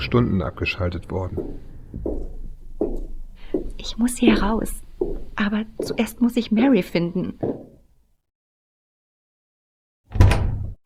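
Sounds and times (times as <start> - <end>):
speech: 0.0 - 3.1, 3.8 - 7.7
low wooden thud of a locked door: 10.1 - 10.8.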